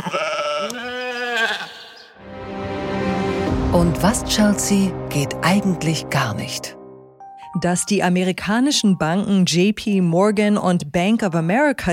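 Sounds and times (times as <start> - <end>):
sheep bleating: 0.0 - 2.2
speech: 3.7 - 6.8, 7.6 - 11.9.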